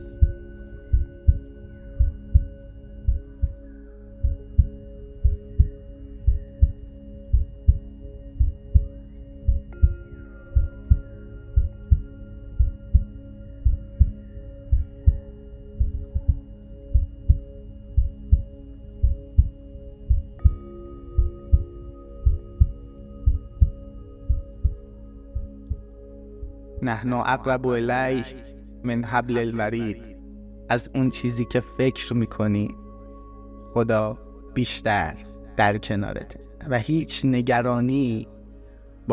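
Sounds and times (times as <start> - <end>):
heartbeat thumping: 0.0 - 3.6, 4.2 - 20.6, 21.2 - 24.8, 25.4 - 26.6
faint sustained hum: 0.0 - 39.1
speech: 26.9 - 30.1, 30.7 - 32.8, 33.8 - 38.4.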